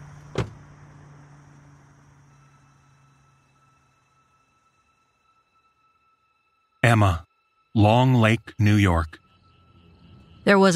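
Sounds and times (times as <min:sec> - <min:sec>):
sharp car door slam: 0:00.3 - 0:00.6
speech: 0:06.9 - 0:09.2, 0:10.4 - 0:10.7.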